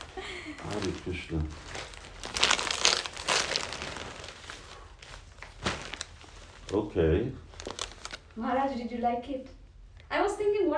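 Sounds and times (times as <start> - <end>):
plastic zipper bag crinkling and rustling as it is opened: 0.0 - 8.4
speech: 0.5 - 1.8, 6.7 - 7.4, 8.4 - 10.7.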